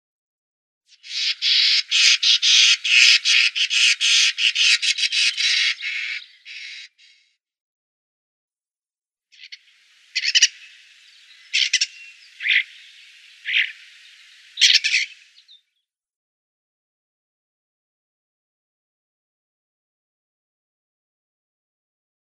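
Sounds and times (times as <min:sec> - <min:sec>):
European Starling calls: 0:00.9 - 0:07.3, 0:09.3 - 0:15.6.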